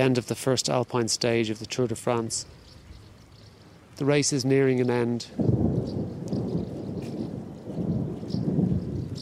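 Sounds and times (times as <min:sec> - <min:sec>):
speech: 0:00.0 - 0:02.6, 0:04.0 - 0:05.6
steady rain hissing faintly: 0:02.4 - 0:09.2
low thunder rumbling: 0:05.3 - 0:09.2.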